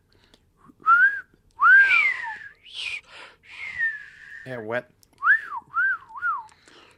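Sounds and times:
person whistling a wavering, sliding tune: 0.8 - 4.5, 5.2 - 6.6
speech: 4.4 - 5.0.

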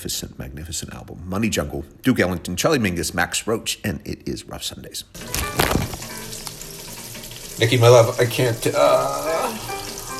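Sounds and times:
speech: 0.0 - 6.0, 7.6 - 9.7
meatballs sizzling and crackling in a hot pan: 5.3 - 10.1.

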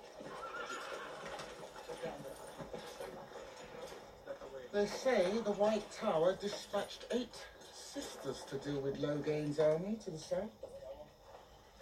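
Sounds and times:
horse whinnying: 0.0 - 2.0
horse hooves clip-clopping: 0.0 - 11.8
speech: 4.7 - 10.6.

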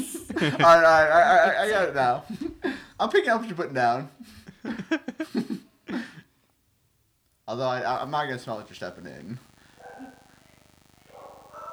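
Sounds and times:
laughter: 0.0 - 6.2
speech: 0.4 - 2.4, 3.0 - 6.0, 7.5 - 9.5
dog barking: 9.8 - 11.7.

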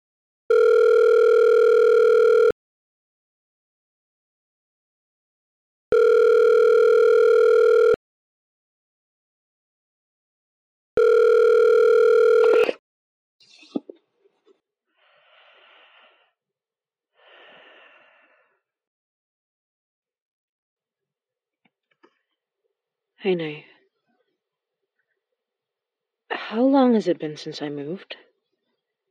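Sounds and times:
steady telephone tone from a phone: 0.5 - 2.6, 5.9 - 8.0, 11.0 - 12.8
speech: 23.2 - 23.7, 26.5 - 28.3.

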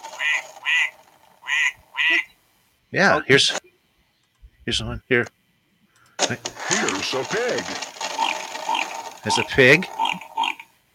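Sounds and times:
nasal electronic duck quacks from an animal-sounds toy: 0.2 - 2.4, 8.2 - 10.7
speech: 2.9 - 3.6, 4.7 - 5.4, 6.3 - 8.0, 9.2 - 10.0.

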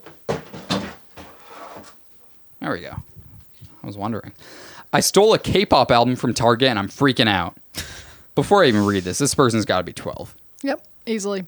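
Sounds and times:
hollow knocks and bumps of a plastic bin against a door: 0.0 - 2.0
plastic bin scraping into place: 1.2 - 2.0, 8.6 - 9.3
speech: 2.7 - 3.2, 3.9 - 11.4.

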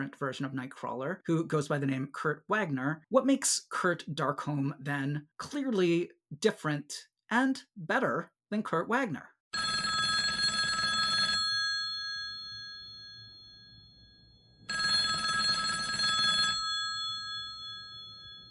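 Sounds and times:
speech: 0.0 - 9.7
telephone bell ringing with an incoming call: 9.6 - 18.4.

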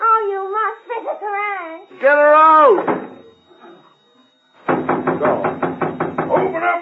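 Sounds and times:
speech: 2.0 - 3.0
heavy rapid pounding on a door: 2.7 - 3.3, 4.6 - 6.8.

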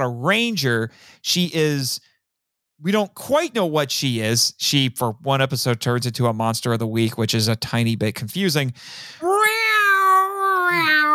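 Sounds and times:
speech: 0.0 - 2.1, 2.8 - 9.3, 10.7 - 11.0
cat meowing long and drawn-out: 9.3 - 11.1.

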